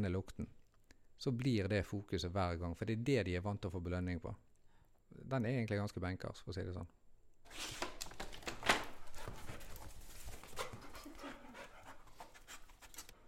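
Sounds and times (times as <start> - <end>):
speech: 0.0 - 0.6, 1.2 - 4.5, 5.2 - 7.8
scent-trained dog sniffing intensely: 9.0 - 13.2.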